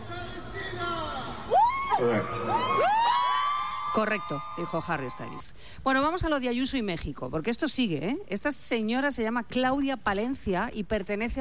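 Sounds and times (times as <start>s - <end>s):
large concert crowd roaring and cheering: 0.8s - 5.5s
individual fans whooping and shouting at a concert: 1.3s - 5.4s
speech: 2.0s - 3.1s, 4.0s - 11.3s.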